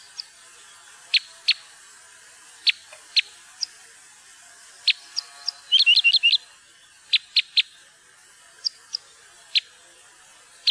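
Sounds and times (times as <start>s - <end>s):
parrot crossbill calls: 0.0s - 1.8s, 2.6s - 3.8s, 4.8s - 9.8s.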